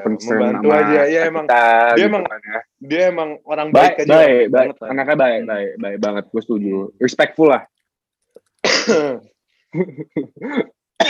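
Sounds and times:
speech: 0.0s - 7.7s, 8.6s - 11.0s
person coughing: 8.6s - 9.2s, 9.8s - 11.0s.

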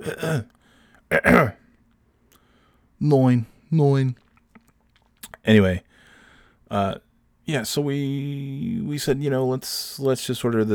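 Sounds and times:
man clearing his throat: 0.0s - 0.5s, 1.1s - 1.7s
speech: 0.0s - 1.6s, 3.0s - 4.2s, 5.2s - 5.9s, 6.7s - 10.7s.

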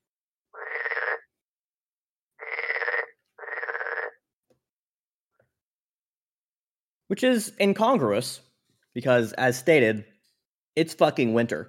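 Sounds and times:
loud raspy frog croaking in woodland: 0.5s - 1.3s, 2.4s - 4.2s
speech: 7.1s - 10.1s, 10.8s - 11.6s.

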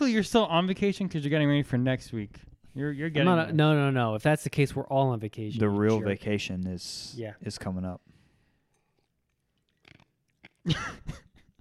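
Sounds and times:
speech: 0.1s - 8.1s, 10.6s - 11.2s
person chewing ice cubes: 8.9s - 10.7s.

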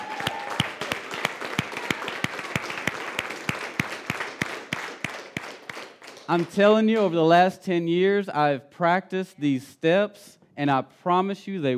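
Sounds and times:
audience clapping: 0.0s - 7.2s
speech: 6.3s - 11.7s.

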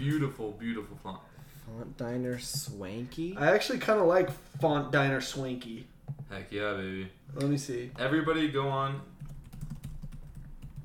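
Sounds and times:
speech: 0.0s - 9.1s
typing on a computer keyboard: 9.2s - 10.8s.

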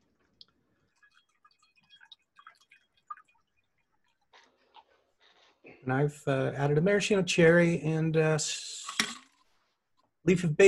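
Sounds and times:
gin and sherry cocktail strained from a shaker with ice into a glass: 0.0s - 5.0s
speech: 5.8s - 8.7s, 10.3s - 10.6s.

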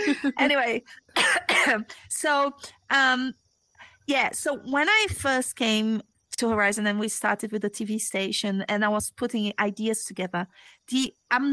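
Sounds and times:
laughter: 0.0s - 0.6s
speech: 0.1s - 3.4s, 4.1s - 11.5s
person with a cold coughing: 1.2s - 1.9s.

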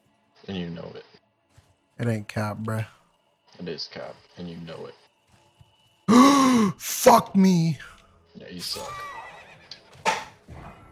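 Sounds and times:
speech: 0.5s - 1.2s, 2.0s - 3.0s, 3.6s - 5.0s, 6.2s - 9.1s
video game horse neighing: 8.7s - 10.3s.

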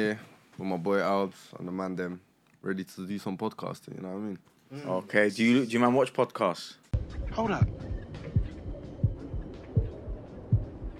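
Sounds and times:
speech: 0.0s - 7.9s
steady heartbeat thumping in lub-dub pairs: 7.0s - 10.9s.

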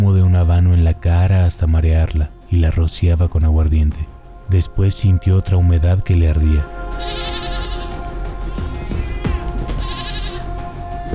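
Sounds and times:
low rumbling background: 0.0s - 7.0s
speech: 0.9s - 7.4s
goat bleating in distress: 6.9s - 10.6s.

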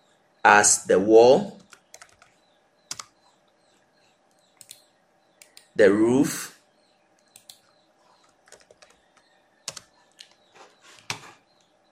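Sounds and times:
speech: 0.4s - 1.6s, 5.8s - 6.6s
computer keyboard typing while renaming 3D models: 1.6s - 3.2s, 4.4s - 4.8s, 7.2s - 10.4s.

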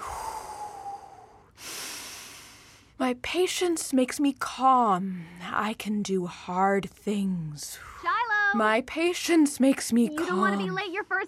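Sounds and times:
faint airy breathing in and out with a light whistle: 0.0s - 3.0s, 7.7s - 8.1s
speech: 3.0s - 11.2s.

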